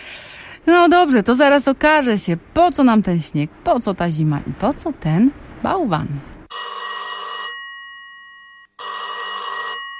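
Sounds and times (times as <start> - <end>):
speech: 0.6 - 6.3
telephone ringing on a call being placed: 6.5 - 9.9.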